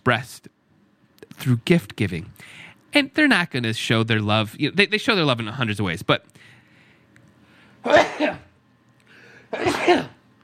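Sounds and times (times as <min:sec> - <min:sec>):
speech: 0:00.0 - 0:00.6, 0:01.4 - 0:06.6, 0:07.8 - 0:08.5, 0:09.5 - 0:10.2
suppressed sneeze held in: 0:07.8 - 0:08.5, 0:09.5 - 0:10.2.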